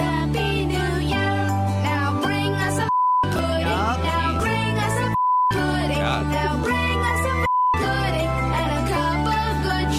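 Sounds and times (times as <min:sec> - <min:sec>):
upbeat Christmas song with singing: 0:00.0 - 0:09.9
short steady censor beeps: 0:02.9 - 0:03.3, 0:05.2 - 0:05.6, 0:07.4 - 0:07.8.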